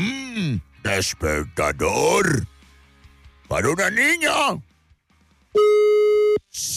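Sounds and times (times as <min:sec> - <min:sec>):
speech: 0:00.0 - 0:02.5, 0:03.5 - 0:04.7, 0:05.5 - 0:05.9
telephone line tone while dialing a call: 0:05.6 - 0:06.4.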